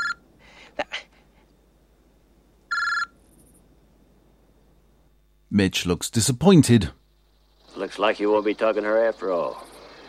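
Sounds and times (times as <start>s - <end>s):
mobile phone ringing: 0.0s - 0.2s, 2.7s - 3.2s
faint breathy noises: 0.3s - 1.6s
speech: 5.5s - 7.0s, 7.9s - 9.7s.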